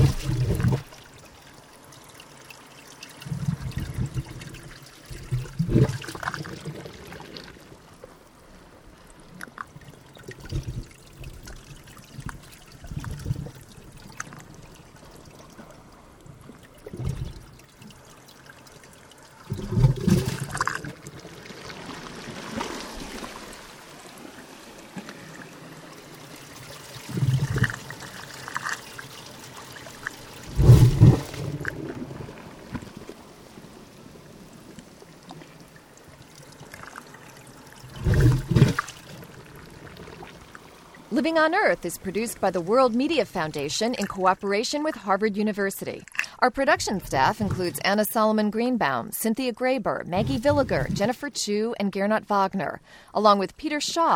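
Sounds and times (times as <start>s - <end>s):
small splashes and gurgles: 0.0s - 7.8s, 9.4s - 33.9s, 34.5s - 41.1s, 46.0s - 46.4s
tiny wavelets lapping in shallow tidal pools off New South Wales, Australia: 0.0s - 48.0s, 49.9s - 51.3s
speech: 41.2s - 54.1s.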